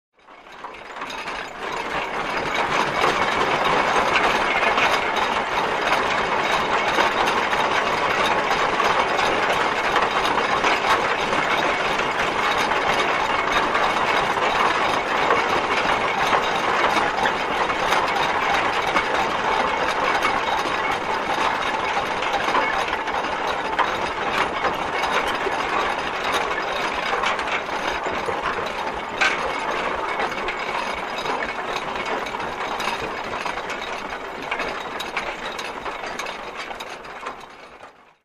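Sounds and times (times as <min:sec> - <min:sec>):
steam tractor driving: 0:00.7 - 0:37.4.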